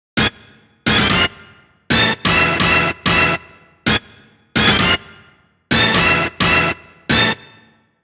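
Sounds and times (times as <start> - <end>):
dry orchestral hit: 0.2 - 4.0, 4.6 - 7.6.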